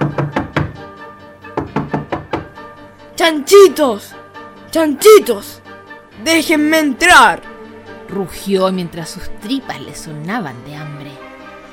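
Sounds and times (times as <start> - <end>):
forceful knocking on a wooden door: 0.0 - 0.9, 1.5 - 2.6
speech: 3.2 - 5.6, 6.2 - 7.5, 8.1 - 11.0.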